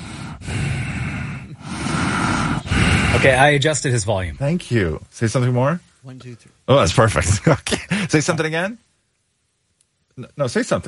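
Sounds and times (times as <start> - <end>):
person imitating heavy breathing through the nose: 0.0 - 3.5
speech: 3.2 - 8.9, 10.2 - 10.8.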